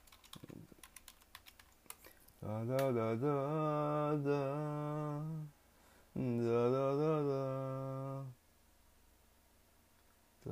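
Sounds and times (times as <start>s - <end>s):
typing on a computer keyboard: 0.0s - 2.1s
speech: 2.4s - 5.6s, 6.2s - 8.4s.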